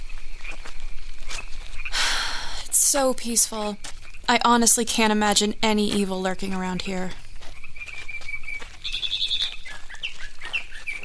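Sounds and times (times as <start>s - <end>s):
speech: 2.9s - 7.2s
mockingbird calling to its mate: 7.6s - 11.0s.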